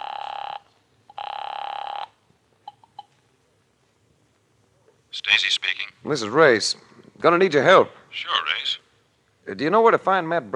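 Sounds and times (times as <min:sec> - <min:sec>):
telephone ringback tone heard through the line: 0:00.0 - 0:02.2
speech: 0:05.3 - 0:08.8, 0:09.5 - 0:10.5.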